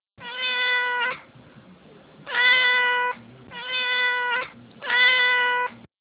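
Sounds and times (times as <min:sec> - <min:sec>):
cat meowing: 0:00.2 - 0:01.2, 0:02.2 - 0:05.8.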